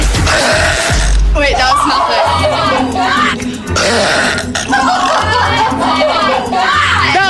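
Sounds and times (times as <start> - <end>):
loud deliberate drawn-out burp: 0.2 - 1.3, 3.7 - 5.3
laughter: 1.5 - 3.8, 4.4 - 7.2.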